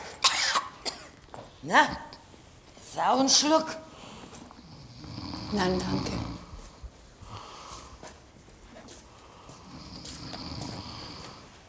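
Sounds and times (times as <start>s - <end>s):
speech: 1.6s - 2.1s, 2.9s - 3.9s, 5.5s - 6.2s
person snoring in their sleep: 4.6s - 6.5s, 9.6s - 11.5s.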